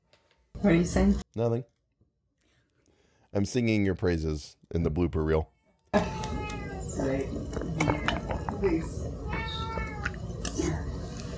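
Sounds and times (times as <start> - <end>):
speech: 0.6 - 1.7, 3.3 - 6.2
cat meowing: 6.0 - 11.0
low murmuring voices in a room: 6.0 - 11.1.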